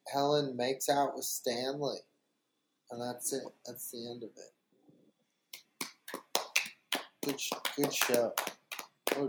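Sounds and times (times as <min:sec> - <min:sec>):
speech: 0:00.1 - 0:02.1, 0:02.9 - 0:04.6, 0:07.2 - 0:09.2
single person clapping hands: 0:05.5 - 0:09.2.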